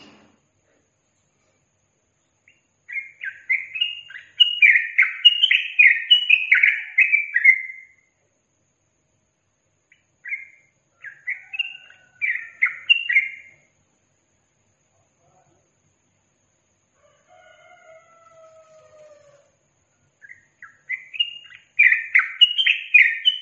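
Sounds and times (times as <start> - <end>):
yellow-vented bulbul singing: 2.3 - 8.2, 9.7 - 13.8, 20.1 - 23.3.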